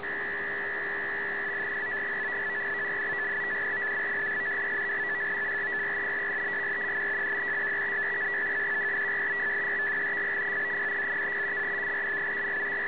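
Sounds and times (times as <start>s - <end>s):
150 baud FSK radio data signal: 0.0s - 12.8s.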